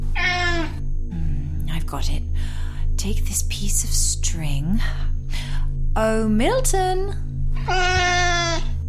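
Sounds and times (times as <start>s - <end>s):
cat meowing: 0.1s - 0.8s, 7.5s - 8.7s
speech: 1.9s - 8.1s.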